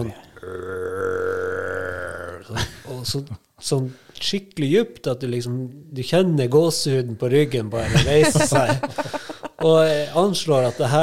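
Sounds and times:
human voice imitating a deep bear roar: 0.3s - 2.5s
speech: 2.5s - 11.0s
laughter: 7.8s - 11.0s.

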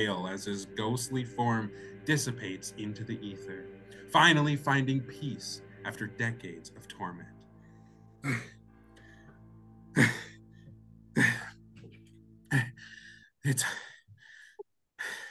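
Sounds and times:
speech: 0.0s - 7.4s, 8.2s - 8.6s, 13.5s - 13.8s
person breathing heavily, out of breath after climbing stairs: 7.6s - 11.6s, 12.5s - 15.2s.

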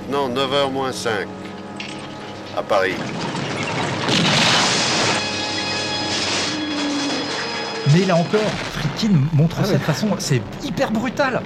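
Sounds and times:
speech: 0.1s - 1.5s, 2.6s - 4.4s, 7.8s - 11.4s
truck crashing into ravine and exploding: 2.9s - 10.3s.

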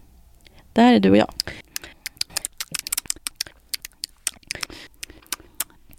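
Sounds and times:
speech: 0.8s - 1.6s
two people lip smacking while chewing with open lips: 1.3s - 5.9s.

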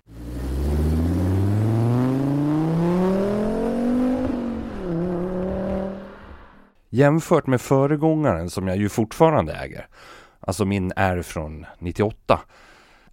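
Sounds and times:
turbocharged five-cylinder car engine revving: 0.0s - 6.8s
speech: 7.0s - 13.1s.

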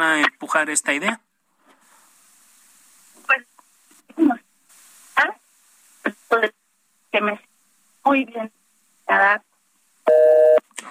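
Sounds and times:
speech: 0.0s - 1.3s, 3.3s - 3.5s, 7.1s - 9.5s
faint noise: 0.0s - 10.9s
telephone busy tone after a call is cut off: 10.1s - 10.6s.

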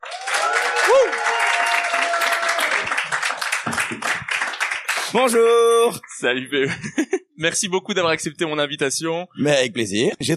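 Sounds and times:
whoops: 0.0s - 3.1s
crowd applause: 0.0s - 5.4s
speech: 5.1s - 10.3s
laughter: 6.6s - 7.4s.

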